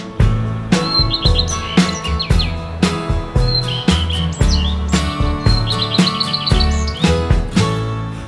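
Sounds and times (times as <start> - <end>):
bouncy music with a strong beat: 0.0 - 8.2
bird chirping at nest: 0.7 - 7.8.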